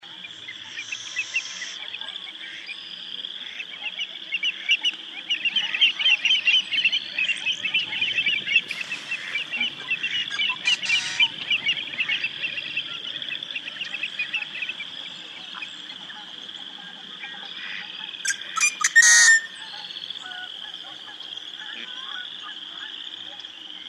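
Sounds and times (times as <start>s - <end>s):
lakeside evening ambience at North Dakota potholes: 0.0s - 23.8s.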